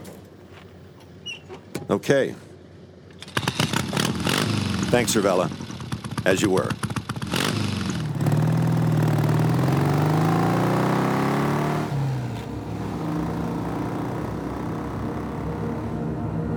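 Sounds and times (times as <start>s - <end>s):
motorcycle engine revving and slowing to idle: 0.3s - 16.4s
speech: 1.9s - 2.4s, 4.9s - 5.6s, 6.2s - 6.8s.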